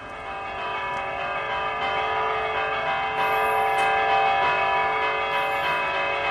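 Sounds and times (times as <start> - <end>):
church bells ringing: 0.0 - 6.3.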